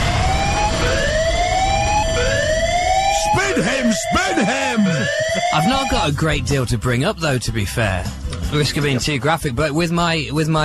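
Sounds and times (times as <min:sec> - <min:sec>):
alarm siren wailing: 0:00.0 - 0:06.2
rumbling background: 0:00.0 - 0:10.6
laughter: 0:03.4 - 0:06.2, 0:08.5 - 0:09.6
speech: 0:03.9 - 0:10.6.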